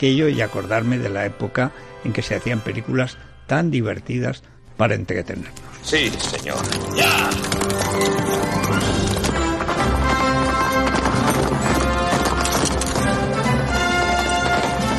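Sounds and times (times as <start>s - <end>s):
speech: 0.0s - 8.8s
dense loud music: 0.0s - 14.9s
horse hooves clip-clopping: 6.2s - 14.9s
horse whinnying: 6.8s - 9.4s.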